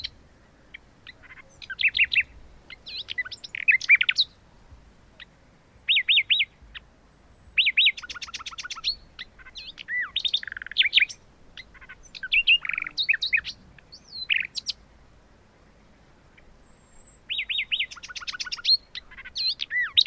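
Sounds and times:
common nightingale song: 0:00.0 - 0:20.0
faint hiss: 0:00.0 - 0:20.0.

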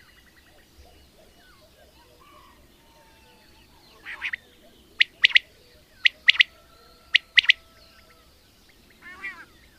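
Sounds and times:
common quail song with nasal notes and sharp three-note phrases: 0:00.0 - 0:09.7.

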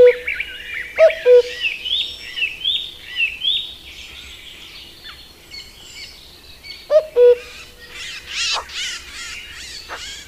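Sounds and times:
common cuckoo cu-coo calls: 0:00.0 - 0:03.6, 0:06.9 - 0:10.2
songbirds warbling and chirping: 0:00.0 - 0:10.2.

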